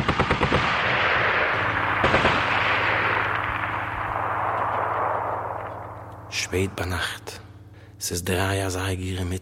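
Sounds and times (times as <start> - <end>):
rapid bursts of gunfire from Polish soldiers: 0.0 - 6.1
heavy cannon boom from Polish soldiers: 0.0 - 6.4
long rumbling roaring continuous battle noise: 0.0 - 7.3
speech: 6.5 - 7.4, 8.0 - 9.4.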